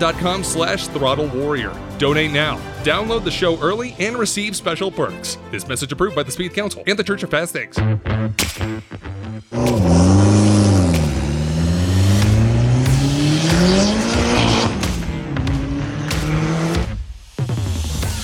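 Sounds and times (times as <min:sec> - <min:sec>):
speech: 0:00.0 - 0:09.8
turbocharged Mitsubishi Eclipse engine revving: 0:09.5 - 0:17.0.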